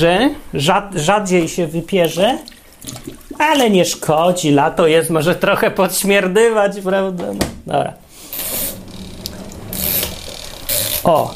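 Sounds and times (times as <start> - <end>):
speech: 0.0 - 8.0, 11.0 - 11.3
tap water running: 2.0 - 3.7, 8.3 - 11.3.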